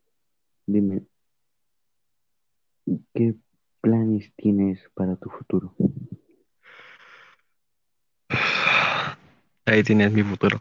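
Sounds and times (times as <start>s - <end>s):
speech: 0.7s - 1.1s, 3.2s - 6.2s, 9.7s - 10.6s
person yawning: 8.3s - 9.2s.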